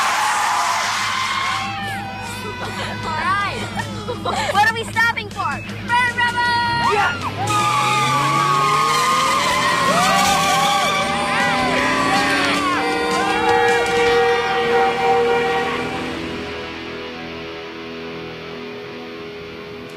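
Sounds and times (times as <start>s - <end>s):
excited people whooping and shouting: 0.0s - 4.2s, 5.8s - 16.2s
car tires squealing: 0.0s - 17.0s
car driving fast with engine roaring: 0.0s - 19.9s
laughter: 1.6s - 5.0s.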